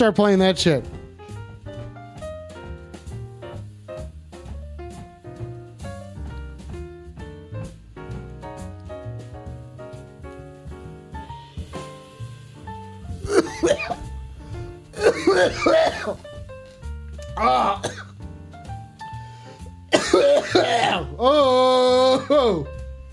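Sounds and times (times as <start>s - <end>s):
speech: 0.0s - 1.0s
loud coughs: 13.2s - 14.0s, 15.0s - 16.2s, 17.4s - 18.1s, 19.9s - 21.3s, 22.0s - 22.6s
throat-clearing bursts: 13.2s - 14.0s, 15.0s - 16.2s, 17.4s - 18.1s, 20.0s - 21.2s.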